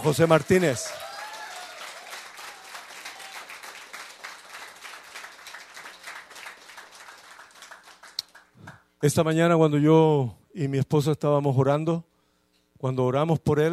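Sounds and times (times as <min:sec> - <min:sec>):
speech: 0:00.0 - 0:01.1, 0:09.0 - 0:12.1, 0:12.8 - 0:13.7
roomful of people applauding: 0:00.0 - 0:08.8.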